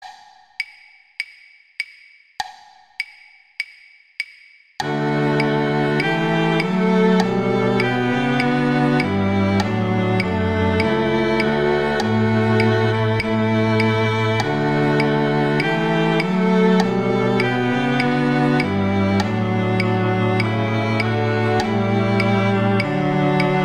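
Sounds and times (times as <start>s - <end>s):
second violin playing in a quartet: 4.8s - 23.6s.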